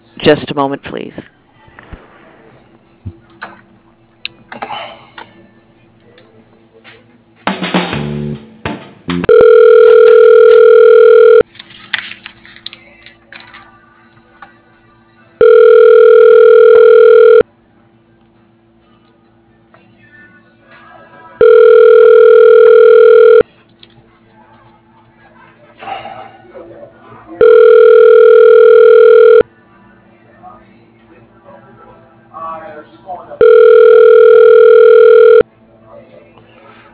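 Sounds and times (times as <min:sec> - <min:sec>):
speech: 0:00.2 - 0:01.4
telephone ringback tone during voicemail transfer: 0:09.3 - 0:11.4, 0:15.4 - 0:17.4, 0:21.4 - 0:23.4, 0:27.4 - 0:29.4, 0:33.4 - 0:35.4.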